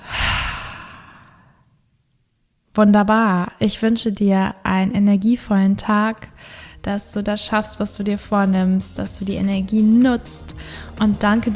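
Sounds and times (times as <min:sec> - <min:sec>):
deep breath in and out during a guided breathing exercise: 0:00.0 - 0:01.7, 0:06.4 - 0:06.9, 0:10.5 - 0:11.0
speech: 0:02.8 - 0:11.5.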